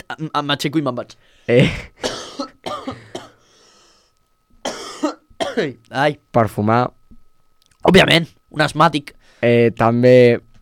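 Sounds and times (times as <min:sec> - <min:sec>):
speech: 0:00.1 - 0:02.1, 0:05.6 - 0:07.0, 0:07.8 - 0:10.5
person coughing: 0:01.5 - 0:03.5, 0:04.6 - 0:05.8.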